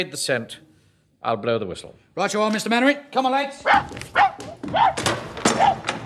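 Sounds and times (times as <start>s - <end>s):
speech: 0.0s - 0.6s, 1.2s - 5.7s
tracking dog barking and yelping: 3.6s - 6.0s.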